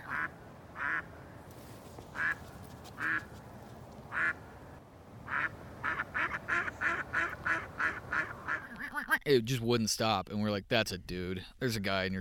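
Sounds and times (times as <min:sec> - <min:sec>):
duck quacking on the other side of a river at first light: 0:00.0 - 0:01.1, 0:02.2 - 0:02.4, 0:03.0 - 0:03.3, 0:04.1 - 0:04.4, 0:05.2 - 0:09.0
speech: 0:09.3 - 0:12.2.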